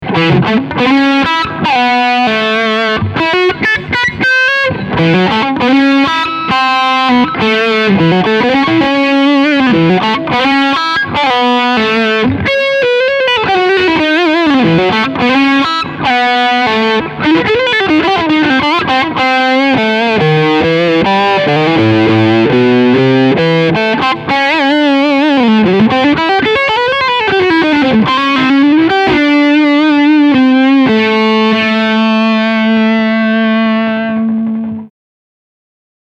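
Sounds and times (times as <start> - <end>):
overdriven guitar lick on a Steg pickup: 0.0 - 34.9.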